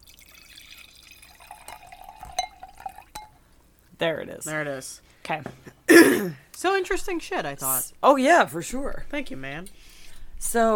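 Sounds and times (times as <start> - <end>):
liquid poured to refill a glass: 0.0 - 3.3
speech: 4.0 - 9.8, 10.4 - 10.7.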